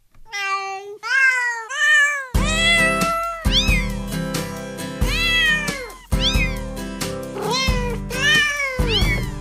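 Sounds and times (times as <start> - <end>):
cat meows arranged into a Christmas melody: 0.3 - 4.1, 5.0 - 9.3
instrumental backing with bass and a bouncy beat: 2.4 - 9.3.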